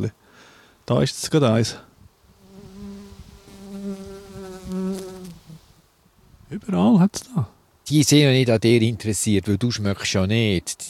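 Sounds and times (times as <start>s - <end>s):
speech: 0.0s - 0.2s, 0.9s - 1.9s, 6.5s - 10.8s
bee buzzing: 2.2s - 5.8s.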